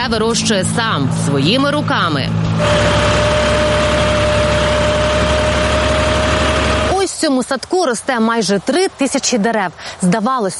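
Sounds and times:
speech: 0.0 - 3.5, 7.2 - 10.5
tractor engine idling in a cherry orchard in Cherkasy region Ukraine: 0.0 - 7.7.

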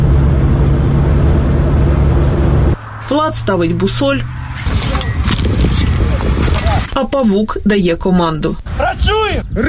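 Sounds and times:
heavy truck carrying a Grad rocket launcher driving off: 0.0 - 6.1
speech: 3.1 - 4.8, 6.8 - 9.6.

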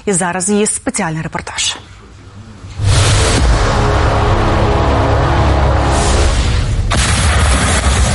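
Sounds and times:
speech: 0.0 - 1.9
long rumbling roar and blast echo: 2.8 - 8.1
heavy artillery gun of a brigade artillery group firing in eastern Ukraine: 6.9 - 8.1.

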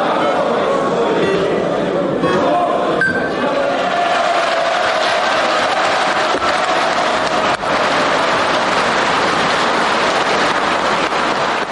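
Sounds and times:
crowd voices in a parliament session hall: 0.0 - 11.7
large crowd clapping in a parliament session hall: 3.4 - 11.7.

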